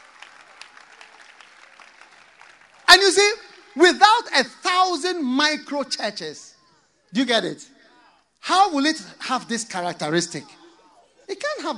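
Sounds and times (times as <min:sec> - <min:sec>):
congregation applauding: 0:00.0 - 0:03.9
speech: 0:03.0 - 0:06.5, 0:07.1 - 0:07.7, 0:08.4 - 0:10.6, 0:11.3 - 0:11.7.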